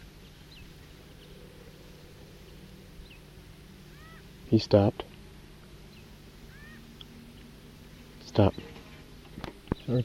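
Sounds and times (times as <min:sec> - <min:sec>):
bird giving short sharp alarm calls: 0:00.0 - 0:04.6, 0:05.8 - 0:08.9
low rumble: 0:00.0 - 0:09.7
speech: 0:04.5 - 0:05.1.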